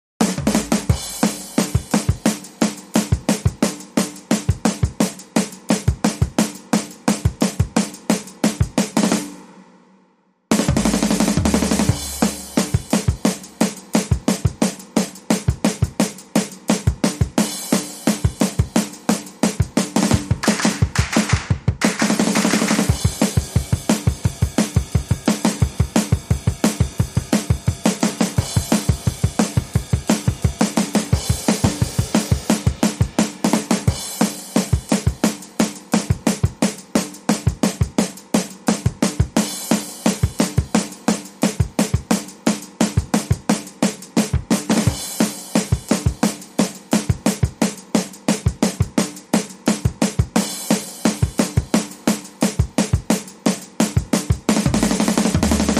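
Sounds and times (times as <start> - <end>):
drums: 0.0 - 55.7
claps: 20.4 - 22.9.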